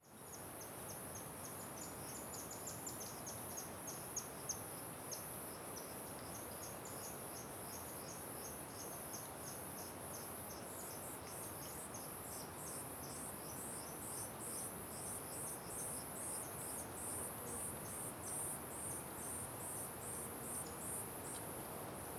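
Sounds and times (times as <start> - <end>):
crickets chirping at a waterfall: 0.2 - 22.0.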